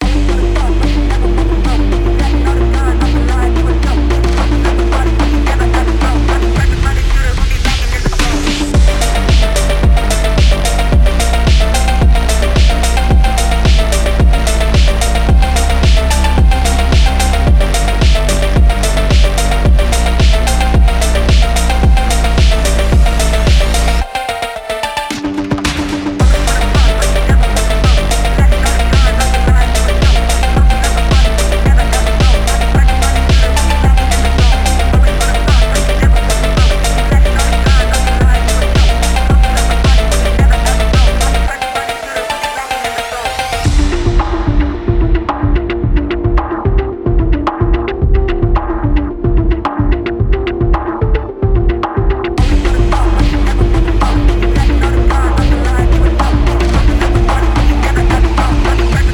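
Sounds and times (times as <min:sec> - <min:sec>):
hard EDM phonk gaming music: 0:00.0 - 0:59.1.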